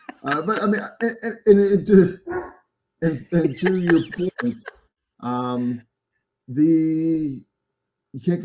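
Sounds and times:
laughter: 0:00.0 - 0:02.1, 0:03.0 - 0:05.7
speech: 0:00.2 - 0:05.9, 0:06.5 - 0:07.5, 0:08.1 - 0:08.4
guard dogs barking: 0:02.3 - 0:02.6.

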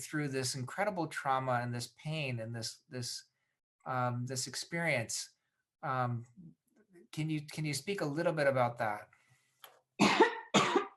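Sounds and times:
speech: 0:00.0 - 0:09.1
heavy harsh coughs of a long-lasting cough: 0:10.0 - 0:10.9.

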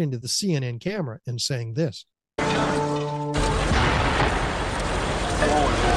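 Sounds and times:
speech: 0:00.0 - 0:03.1
steady humming tone: 0:02.4 - 0:04.0
distant explosion of a building blowing up: 0:03.4 - 0:05.9.

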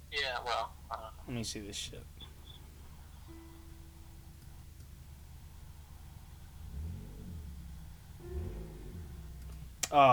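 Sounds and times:
speech: 0:00.4 - 0:02.3, 0:09.9 - 0:10.1
car engine idling and revving in a driveway: 0:04.5 - 0:10.0.

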